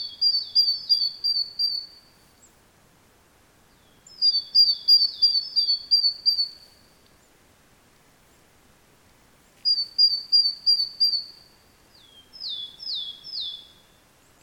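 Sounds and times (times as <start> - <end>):
great tit Parus major calling: 0.0 - 1.9, 4.1 - 6.7, 9.6 - 13.8.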